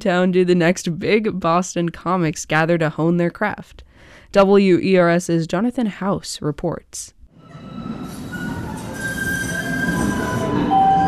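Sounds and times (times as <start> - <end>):
speech: 0.0 - 7.2
light rail trolley in Boston rumbling along its tracks: 7.4 - 11.0
thin sustained metallic wheel squeals of a light rail trolley: 7.4 - 11.0.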